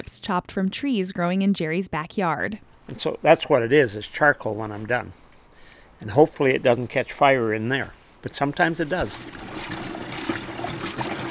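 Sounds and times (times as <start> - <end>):
speech: 0.1 - 5.2, 6.0 - 9.7
water trickling into a big bucket of curing brine: 8.3 - 11.2.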